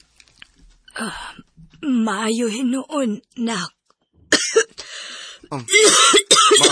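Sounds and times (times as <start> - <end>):
speech: 1.0 - 3.8, 5.5 - 6.7
person coughing harshly: 4.3 - 4.8, 5.5 - 6.7
person clearing throat: 5.5 - 6.7.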